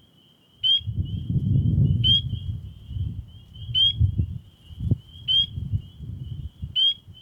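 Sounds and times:
Spring peeper Pseudacris crucifer peeping: 0.6 - 1.3, 1.9 - 2.5, 3.6 - 4.0, 5.0 - 5.6, 6.7 - 7.2.

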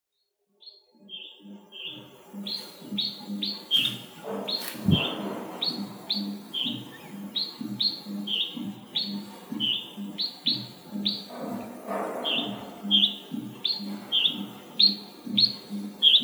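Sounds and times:
red-whiskered bulbul chirping, Pycnonotus jocosus: 1.2 - 16.2.

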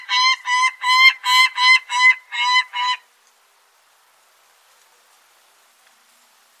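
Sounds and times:
peregrine falcon cackling: 0.0 - 3.0.

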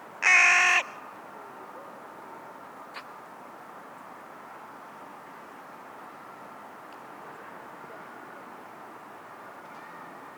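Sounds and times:
carrion crow cawing, Corvus corone: 0.2 - 1.0.

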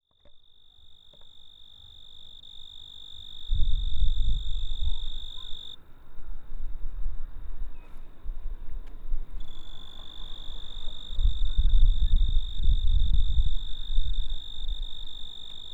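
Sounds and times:
cricket trill: 0.0 - 5.8, 9.4 - 15.7.

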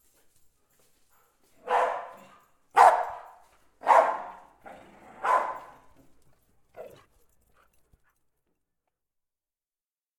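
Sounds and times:
two dogs barking: 1.6 - 6.0.

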